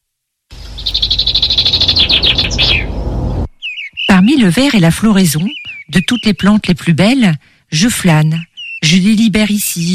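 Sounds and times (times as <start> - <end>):
low steady rumble: 0.5 - 3.5
song thrush singing: 0.5 - 6.7, 8.2 - 9.1
speech: 4.3 - 9.9.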